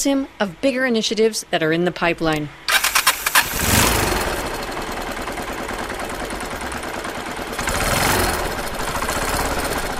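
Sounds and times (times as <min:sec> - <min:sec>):
speech: 0:00.0 - 0:02.6
homemade prototype car engine starting and idling roughly in Lilongwe Malawi: 0:02.7 - 0:09.9.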